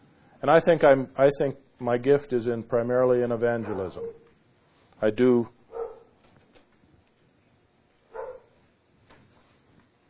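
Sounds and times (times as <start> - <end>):
speech: 0.4 - 4.2, 5.0 - 5.6
dog barking sharply: 3.6 - 4.3, 5.7 - 6.2, 8.1 - 8.6.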